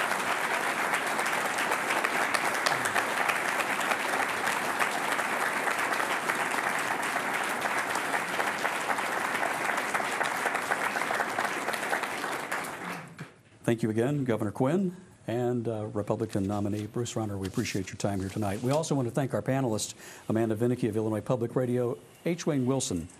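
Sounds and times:
studio audience applause: 0.0s - 13.2s
speech: 13.7s - 23.1s.

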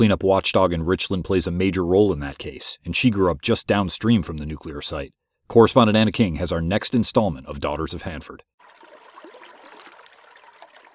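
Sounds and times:
speech: 0.0s - 8.8s
water lapping at a bobbing dock on the Columbia River: 8.6s - 10.9s.

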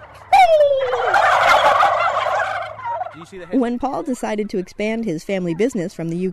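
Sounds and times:
man imitating aggressive male turkey gobbling: 0.3s - 4.6s
speech: 3.3s - 6.3s.

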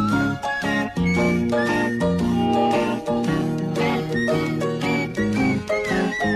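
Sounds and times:
whistled melody: 0.0s - 6.3s
full steady band backing: 2.1s - 4.8s.

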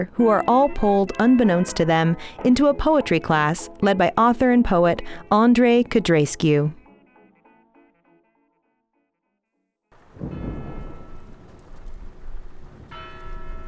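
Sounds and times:
speech: 0.0s - 6.8s
church bells chiming: 0.1s - 4.2s, 10.3s - 11.5s, 12.9s - 13.6s
heavy rain in an outdoor city square: 10.0s - 13.6s.

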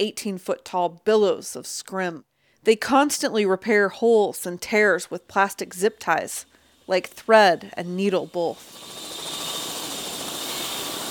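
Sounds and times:
speech: 0.0s - 9.1s
private helicopter in flight above a farm: 8.6s - 11.1s.

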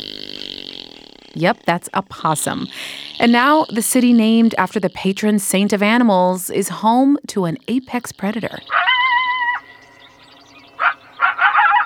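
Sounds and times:
speech: 1.4s - 8.9s
coyote howling: 8.6s - 11.8s.

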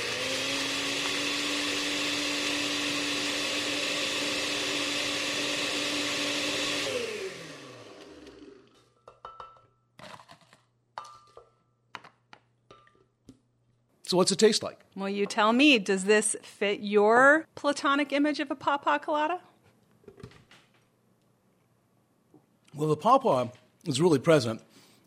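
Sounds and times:
blender grinding crushed ice for a drink: 0.0s - 8.9s
speech: 14.1s - 19.5s, 22.8s - 24.7s.

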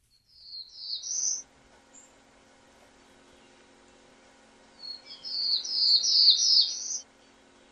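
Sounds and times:
quiet hum: 0.0s - 7.7s
black-throated blue warbler singing buzzy rising phrases: 0.1s - 2.2s, 4.6s - 7.7s.

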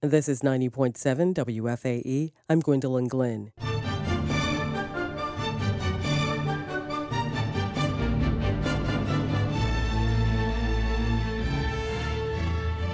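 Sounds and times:
speech: 0.0s - 3.9s
symphony orchestra playing sustained chords: 3.6s - 12.9s.

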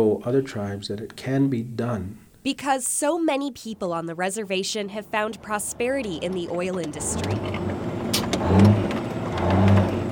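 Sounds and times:
speech: 0.0s - 7.8s
oil field truck engine revving: 5.0s - 10.1s.

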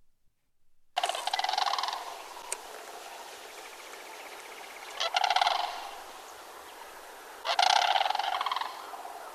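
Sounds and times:
sandhill cranes giving rolling rattling bugle calls: 1.0s - 9.3s.

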